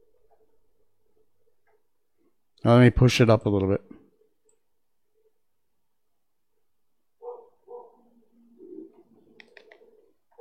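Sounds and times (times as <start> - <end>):
speech: 2.6 - 4.0
dog barking: 7.2 - 8.1.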